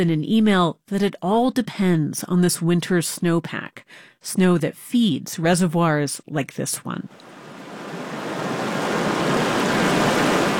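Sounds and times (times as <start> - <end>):
speech: 0.0 - 7.4
river water flowing with a churning hiss: 7.1 - 10.5.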